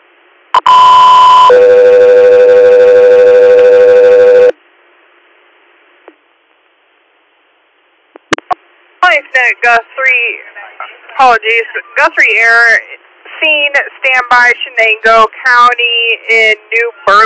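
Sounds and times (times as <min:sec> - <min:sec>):
faint radio static: 0:00.2 - 0:17.2
radio dispatch paging alert tones: 0:00.6 - 0:04.5
speech: 0:09.4 - 0:10.5, 0:11.2 - 0:17.2.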